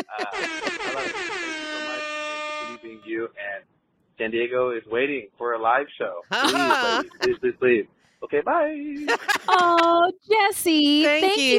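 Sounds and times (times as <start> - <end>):
laughter: 0.0 - 1.2, 6.3 - 7.6, 9.0 - 10.0
DJ air horn sound effect: 0.1 - 3.2
speech: 4.2 - 11.5.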